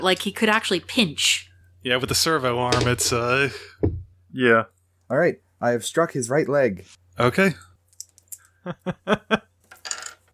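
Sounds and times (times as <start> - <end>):
speech: 0.0 - 7.7, 8.6 - 9.4
laughter: 8.6 - 9.4
damage dice rolling on a table during a game: 9.6 - 10.3.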